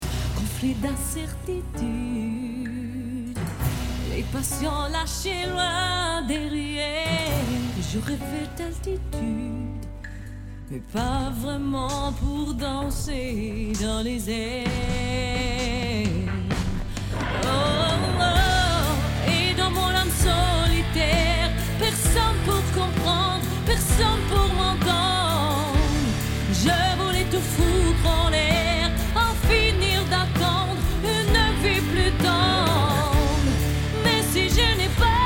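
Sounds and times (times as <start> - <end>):
pop singing: 0.0 - 35.2.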